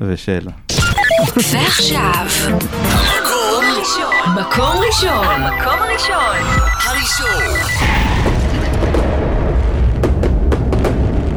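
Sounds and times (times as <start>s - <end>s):
speech: 0.0s - 8.2s
fireworks explosions: 7.4s - 11.3s.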